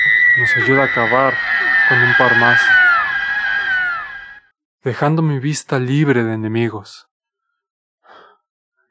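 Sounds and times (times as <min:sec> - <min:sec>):
person screaming high and strained: 0:00.0 - 0:04.4
speech: 0:00.4 - 0:02.8, 0:04.8 - 0:07.1.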